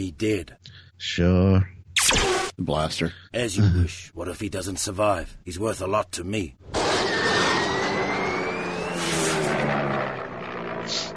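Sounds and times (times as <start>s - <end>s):
speech: 0.0s - 7.1s
propeller plane engine roar: 6.6s - 11.1s.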